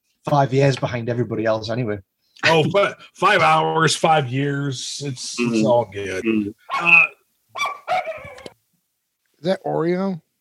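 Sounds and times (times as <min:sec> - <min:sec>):
speech: 0:00.2 - 0:07.1, 0:09.4 - 0:10.2
dog barking: 0:06.7 - 0:08.5.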